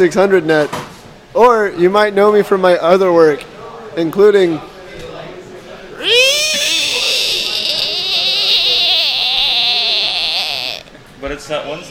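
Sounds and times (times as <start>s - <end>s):
speech: 0.0s - 0.8s, 1.4s - 4.7s, 11.4s - 11.8s
frog or toad screaming: 6.0s - 10.9s.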